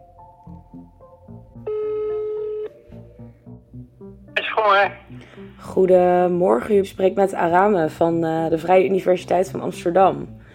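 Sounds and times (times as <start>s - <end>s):
telephone ringing tone: 1.6s - 2.8s
speech: 4.6s - 10.4s.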